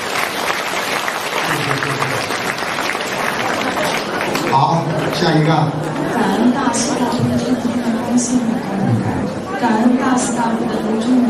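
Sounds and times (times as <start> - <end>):
large audience applause: 0.0 - 5.4
speech: 4.6 - 11.2.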